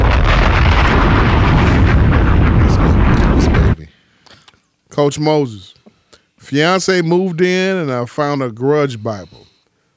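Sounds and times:
bomb explosion: 0:00.0 - 0:03.8
speech: 0:05.0 - 0:05.8, 0:06.4 - 0:09.5.

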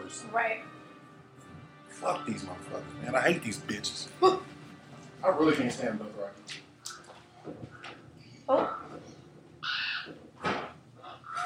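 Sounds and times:
speech: 0:00.1 - 0:00.8, 0:01.9 - 0:04.6, 0:05.2 - 0:06.7, 0:08.5 - 0:08.7
ravens cawing: 0:02.0 - 0:02.7, 0:07.7 - 0:11.4.

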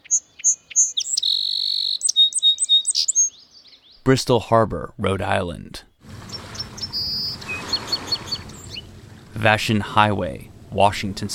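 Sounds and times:
song sparrow singing: 0:00.0 - 0:04.0, 0:06.2 - 0:09.4
speech: 0:04.0 - 0:05.9, 0:09.4 - 0:11.3.

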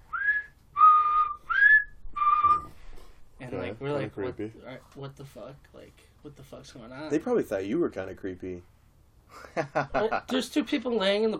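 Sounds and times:
man whistling: 0:00.0 - 0:02.8
speech: 0:03.5 - 0:11.3.

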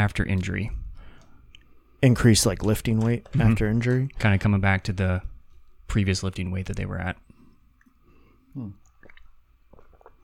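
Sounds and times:
speech: 0:00.0 - 0:00.8, 0:02.0 - 0:05.3, 0:05.9 - 0:07.2, 0:08.5 - 0:08.8
person sipping water: 0:07.3 - 0:10.2
low gulp and wet clicks of swallowing: 0:08.5 - 0:10.2.

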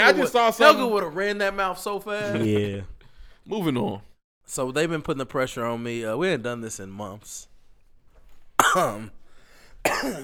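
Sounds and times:
speech: 0:00.0 - 0:07.5, 0:08.6 - 0:09.2, 0:09.8 - 0:10.2
person giving a throat-clearing cough: 0:08.6 - 0:09.0, 0:09.8 - 0:10.2.

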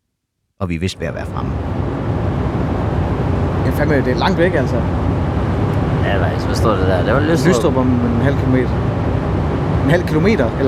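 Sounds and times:
speech: 0:00.6 - 0:01.9, 0:03.8 - 0:05.2, 0:06.1 - 0:09.2, 0:09.9 - 0:10.6
low engine rumble: 0:00.6 - 0:10.6.

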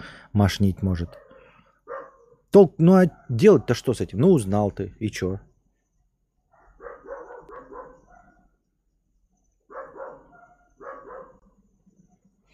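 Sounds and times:
speech: 0:00.3 - 0:01.2, 0:02.5 - 0:05.5
dogs barking back and forth at each other: 0:01.0 - 0:03.8, 0:06.5 - 0:08.6, 0:09.6 - 0:11.6.

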